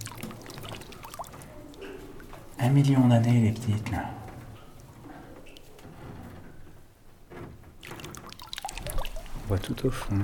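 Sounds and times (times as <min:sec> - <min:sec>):
water lapping and sloshing in a flooded cave: 0:00.0 - 0:02.7, 0:07.8 - 0:10.0
speech: 0:02.6 - 0:04.2, 0:09.5 - 0:10.2.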